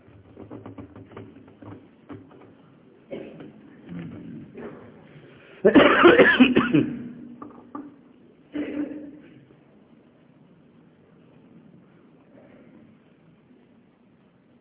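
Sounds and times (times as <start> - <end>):
man delivering a sermon coughing: 5.6 - 7.2, 8.5 - 9.2.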